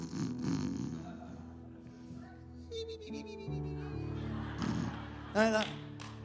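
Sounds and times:
person vocally imitating a family snoring: 0.0 - 1.2
laughter: 1.0 - 2.0, 3.5 - 6.2.

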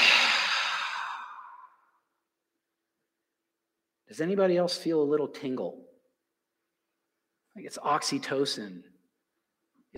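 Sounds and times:
long soft exhale through the mouth during a breathing exercise: 0.0 - 1.8
speech: 4.1 - 5.9, 7.6 - 9.0.

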